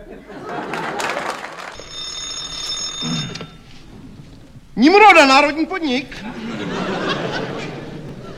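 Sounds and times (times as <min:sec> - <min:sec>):
laughter: 0:00.0 - 0:01.8, 0:06.1 - 0:08.3
telephone bell ringing: 0:01.7 - 0:03.9
speech: 0:04.8 - 0:06.3.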